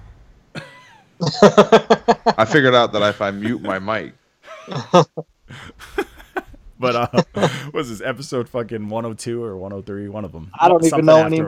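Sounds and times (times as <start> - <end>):
harsh raspy wheezy hacking coughing fit: 0.6 - 0.9, 7.0 - 7.8
laughter: 1.2 - 3.9, 4.5 - 7.9
speech: 1.3 - 6.0, 6.8 - 11.4.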